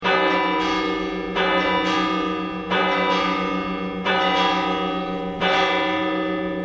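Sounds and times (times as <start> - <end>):
bells ringing: 0.0 - 6.6.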